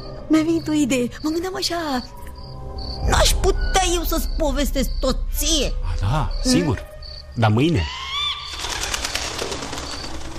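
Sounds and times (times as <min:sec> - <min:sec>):
thin bird chirp: 0:00.0 - 0:10.3
speech: 0:00.3 - 0:02.2, 0:03.2 - 0:08.0
bird fluttering and rustling: 0:08.5 - 0:10.3.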